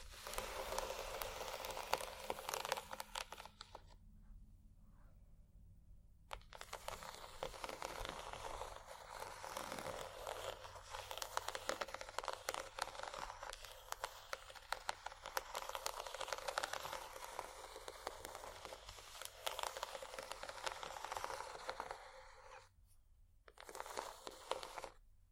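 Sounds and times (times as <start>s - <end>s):
textured bumpy objects scratching and rubbing together: 0.0s - 4.0s, 6.3s - 22.7s, 23.5s - 25.0s
low steady hum: 3.8s - 6.3s.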